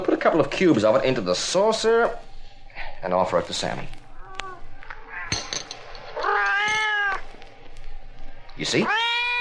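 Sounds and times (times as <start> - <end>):
speech: 0.0 - 2.3, 3.0 - 4.0, 8.6 - 9.0
cat meowing: 4.1 - 5.3, 6.2 - 7.2, 8.8 - 9.4.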